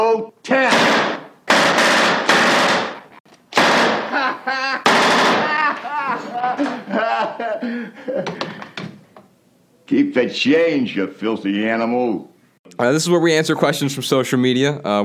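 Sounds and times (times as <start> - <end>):
machine gun sound effect: 0.7 - 4.2, 4.8 - 5.6
laughter: 4.1 - 8.7
speech: 9.9 - 15.0.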